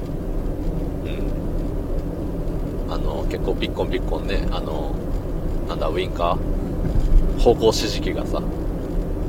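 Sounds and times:
old car interior road and engine rumble while driving: 0.0 - 9.2
speech: 2.9 - 5.1, 5.7 - 6.7, 7.4 - 8.6.

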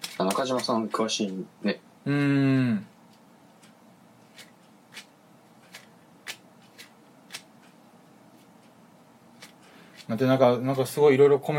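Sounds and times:
faint steady hiss: 0.0 - 11.5
speech: 0.2 - 2.9, 10.1 - 11.5
hand-rolled cigarette being rolled from shag tobacco: 3.6 - 7.5, 9.3 - 10.2.

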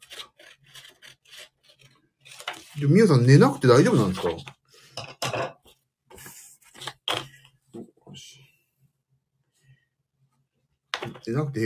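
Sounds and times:
scissors cutting through thick paper or cardboard: 0.0 - 2.8
speech: 2.8 - 4.6, 11.3 - 11.6.

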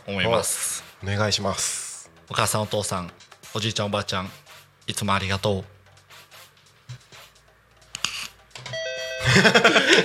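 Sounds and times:
speech: 0.0 - 5.8, 9.4 - 10.0
burst of ringing tones: 8.6 - 9.8
doorbell-style ding-dong chime: 8.7 - 9.8
laughter: 9.2 - 10.0.

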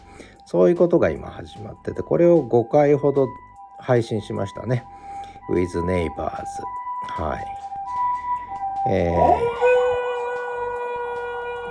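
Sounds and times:
passing ambulance siren: 0.0 - 11.6
speech: 0.5 - 7.6, 8.8 - 9.7
dog howling: 8.8 - 11.6.

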